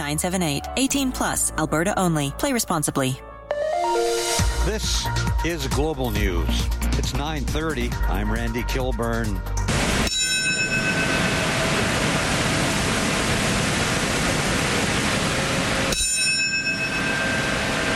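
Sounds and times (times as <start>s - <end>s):
speech: 0.0s - 3.3s, 3.9s - 10.1s
memorial bell tolling in New York City: 10.0s - 12.2s, 15.9s - 17.9s
steady broad rushing noise: 10.9s - 16.0s.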